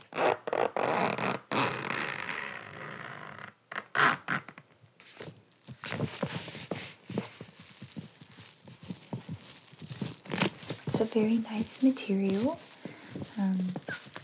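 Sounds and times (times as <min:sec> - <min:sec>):
zipper of a large waterproof bag with a small metal pull opening and closing: 0:00.0 - 0:04.6, 0:05.8 - 0:14.2
handling noise of a large waterproof bag: 0:05.0 - 0:14.2
speech: 0:11.0 - 0:12.7, 0:13.4 - 0:14.0.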